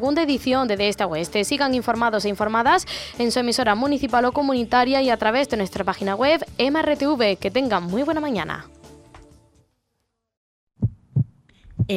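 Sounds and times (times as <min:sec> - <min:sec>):
speech: 0:00.0 - 0:08.8
heartbeat sound effect in a radio jingle: 0:10.8 - 0:11.9.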